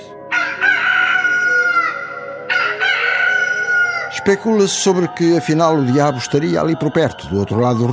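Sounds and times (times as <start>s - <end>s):
rooster crowing: 0.3s - 4.2s
speech: 4.2s - 7.9s.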